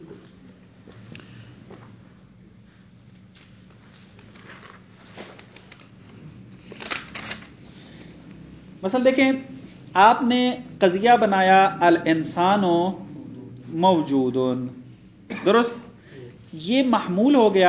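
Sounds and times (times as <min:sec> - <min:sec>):
rustling and shuffling of paper pages: 0:03.3 - 0:06.0
speech: 0:08.8 - 0:13.0, 0:13.7 - 0:14.8, 0:15.4 - 0:15.8, 0:16.5 - 0:17.6.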